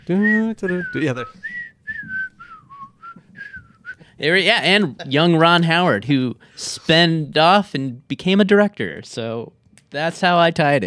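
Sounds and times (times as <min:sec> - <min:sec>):
faint noise: 0:00.0 - 0:10.8
speech: 0:00.1 - 0:02.2, 0:04.2 - 0:10.8
person whistling a TV theme-style melody: 0:00.1 - 0:04.1.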